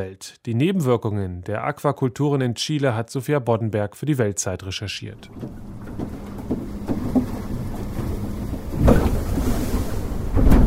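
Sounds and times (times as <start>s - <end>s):
speech: 0.0s - 5.8s
waves slapping against small fishing boats: 5.2s - 10.6s.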